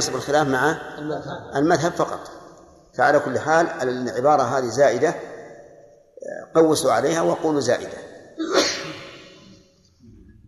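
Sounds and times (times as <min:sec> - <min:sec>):
speech: 0:00.0 - 0:02.4, 0:03.0 - 0:05.3, 0:06.2 - 0:08.5
person sneezing: 0:08.4 - 0:09.5.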